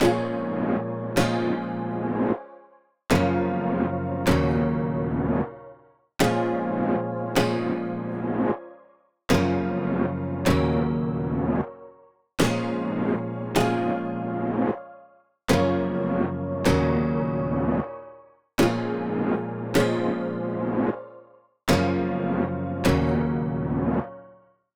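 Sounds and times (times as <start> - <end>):
155 BPM A sharp minor chord loop: 0.0 - 2.4, 3.1 - 5.6, 6.2 - 8.6, 9.3 - 11.7, 12.4 - 14.8, 15.5 - 18.0, 18.6 - 21.1, 21.7 - 24.1.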